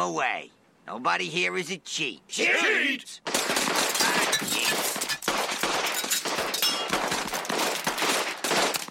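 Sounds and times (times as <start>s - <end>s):
speech: 0.0s - 3.8s
derringer pistol gunshots during a card-game standoff: 3.3s - 8.8s.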